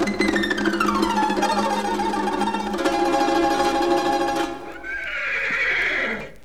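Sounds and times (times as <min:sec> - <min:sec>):
chestnut horse neighing: 0:00.0 - 0:06.4.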